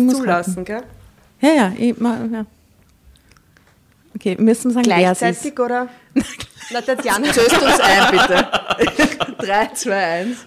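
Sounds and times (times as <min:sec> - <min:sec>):
speech: 0:00.0 - 0:02.6, 0:04.2 - 0:10.4
person biting into and chewing a crunchy snack: 0:02.8 - 0:04.1
laughter: 0:06.2 - 0:10.2.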